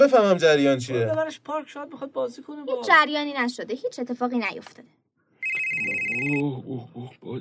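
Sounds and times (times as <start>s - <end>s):
speech: 0.0s - 5.0s, 5.8s - 7.4s
telephone ringing: 5.4s - 6.5s.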